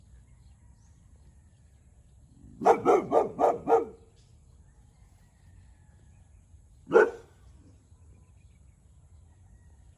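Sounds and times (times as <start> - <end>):
Boxer dog barking: 2.6 - 4.0, 6.9 - 7.4.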